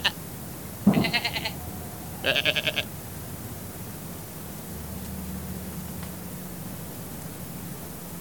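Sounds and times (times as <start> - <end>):
low background noise: 0.0 - 8.1
sheep bleating: 0.9 - 2.9.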